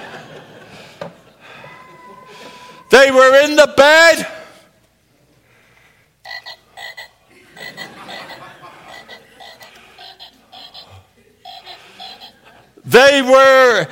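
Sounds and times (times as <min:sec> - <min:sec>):
laughter: 0:00.0 - 0:02.9, 0:07.2 - 0:12.8
speech: 0:03.0 - 0:04.4, 0:13.0 - 0:13.8
chorus of frogs croaking: 0:06.2 - 0:12.5.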